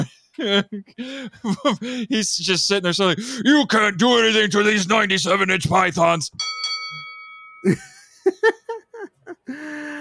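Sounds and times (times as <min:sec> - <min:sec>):
speech: 0:00.4 - 0:06.6, 0:07.6 - 0:08.6
bell ringing to mark next round: 0:06.4 - 0:08.3
bursts of laughter: 0:07.7 - 0:09.6.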